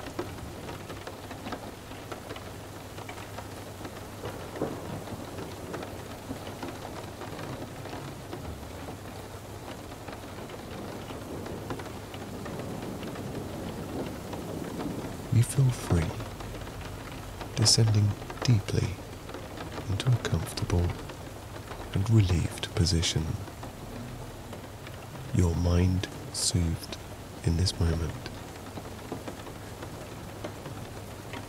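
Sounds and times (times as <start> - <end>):
steady dense rainfall: 0.0 - 31.4
low thunder rumble: 4.2 - 6.3, 10.8 - 20.3
speech: 15.5 - 16.2, 17.6 - 19.0, 20.0 - 21.1, 22.0 - 23.5, 25.4 - 28.3.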